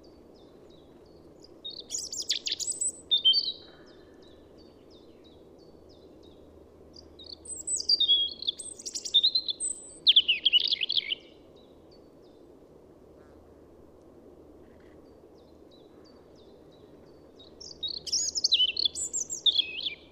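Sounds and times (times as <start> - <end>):
European robin Erithacus rubecula warbling song: 1.7 - 3.6, 7.2 - 11.4, 17.4 - 20.0.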